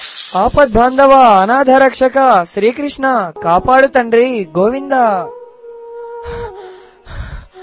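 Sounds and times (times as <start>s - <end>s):
speech: 0.3s - 5.4s
person panting and gasping for breath after running: 6.2s - 7.6s.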